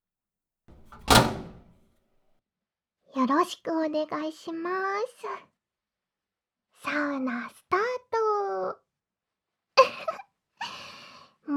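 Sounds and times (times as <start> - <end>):
sauna door swinging shut with a solid thump: 0.7 - 1.8
speech: 3.2 - 5.5, 6.8 - 8.8.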